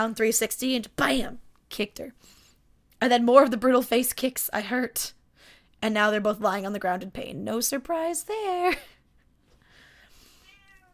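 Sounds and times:
speech: 0.0s - 2.4s, 3.0s - 5.2s, 5.8s - 8.9s
cat meowing: 10.4s - 10.9s.

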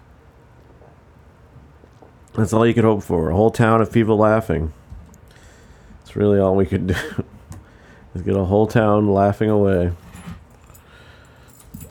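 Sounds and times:
speech: 2.4s - 4.8s, 6.1s - 7.3s, 8.2s - 10.0s
small set of keys being shifted around: 9.5s - 11.8s.

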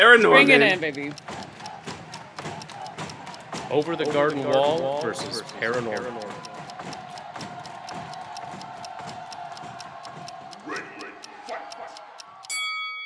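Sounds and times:
speech: 0.0s - 1.3s, 3.7s - 7.0s
countdown clock ticking: 0.0s - 12.7s.

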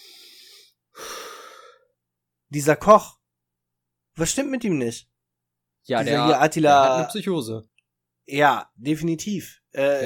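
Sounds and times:
deep breath: 0.0s - 2.0s
speech: 2.5s - 3.2s, 4.2s - 5.1s, 5.8s - 10.0s.

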